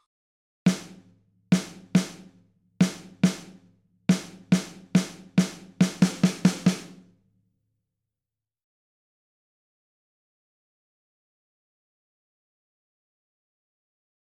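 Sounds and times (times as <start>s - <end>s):
rhythm dictation exercise: 0.7s - 7.1s.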